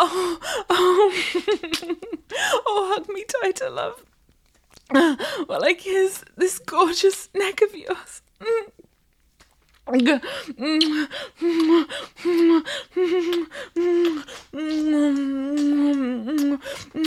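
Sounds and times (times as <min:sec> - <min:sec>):
breathy voiced gasps and heavy exhalations: 0:00.0 - 0:01.4, 0:02.3 - 0:02.7, 0:10.2 - 0:17.0
speech: 0:03.0 - 0:04.1, 0:04.9 - 0:08.9, 0:09.9 - 0:17.0.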